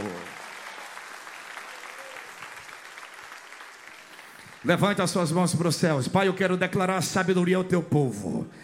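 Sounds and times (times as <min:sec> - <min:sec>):
audience applauding: 0:00.0 - 0:05.6
speech: 0:04.6 - 0:08.6.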